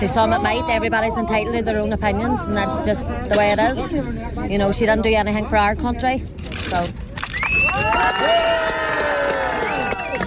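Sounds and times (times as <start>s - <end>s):
speech: 0.0s - 7.0s, 7.8s - 8.8s
onlooking crowd cheering and whooping: 7.2s - 10.2s.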